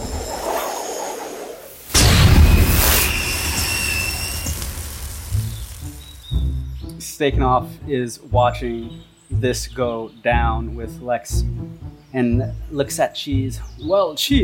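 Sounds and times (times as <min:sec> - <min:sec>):
magic blast spell fired into the air, booming burst with hissing tail: 0:01.6 - 0:06.5
speech: 0:07.2 - 0:14.4.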